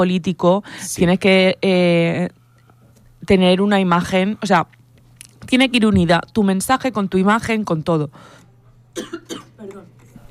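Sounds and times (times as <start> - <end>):
speech: 0.0 - 2.4, 3.2 - 4.8, 5.4 - 8.4, 9.0 - 9.9
person clearing throat with a throaty hack: 9.0 - 9.8
person coughing forcefully: 9.0 - 9.8.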